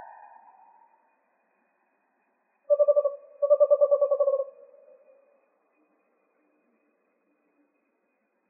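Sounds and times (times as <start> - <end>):
Western screech owl giving pulsed hooting trills in Arizona: 0.0 - 1.0, 2.7 - 5.2.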